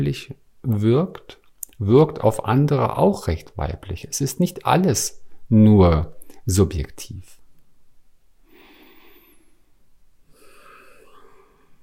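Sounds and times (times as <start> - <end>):
speech: 0.0 - 7.4
deep breathing: 8.4 - 11.8.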